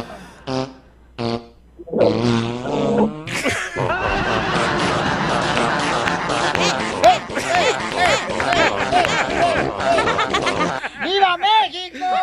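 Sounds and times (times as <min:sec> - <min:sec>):
rapid series of farts: 0:01.2 - 0:03.2
laughter: 0:03.3 - 0:12.2
chattering: 0:05.5 - 0:10.6.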